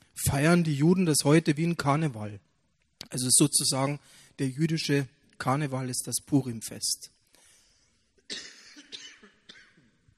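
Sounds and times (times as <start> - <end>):
speech: 0.3 - 2.5, 3.1 - 7.2
person coughing with hacking coughs and throaty rasps: 8.2 - 10.0.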